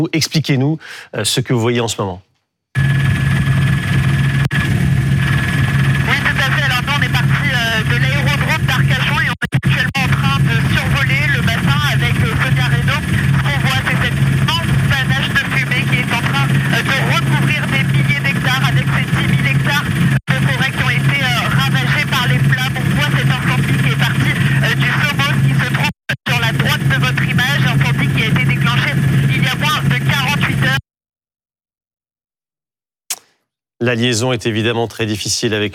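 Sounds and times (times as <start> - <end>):
voice talking: 0.0 - 2.2, 6.1 - 30.8
speech: 0.0 - 3.0, 33.8 - 35.7
helicopter engine drone heard from on board: 2.8 - 30.8.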